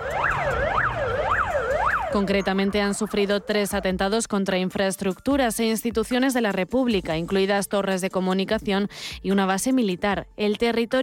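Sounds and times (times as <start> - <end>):
low rumble of traffic in Transnistria Moldova: 0.0 - 4.0
emergency vehicle siren wailing in Transnistria Moldova: 0.0 - 4.2
speech: 2.1 - 11.0.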